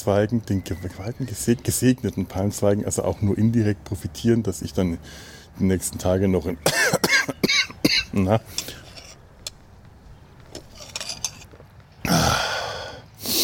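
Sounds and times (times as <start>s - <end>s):
speech: 0.0s - 8.8s
sick person coughing in a fit: 6.6s - 8.2s.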